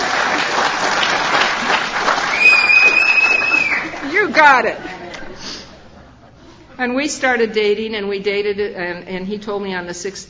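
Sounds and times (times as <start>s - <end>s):
audience applause at a live talk: 0.0s - 4.6s
speech: 4.4s - 4.9s, 6.8s - 10.2s.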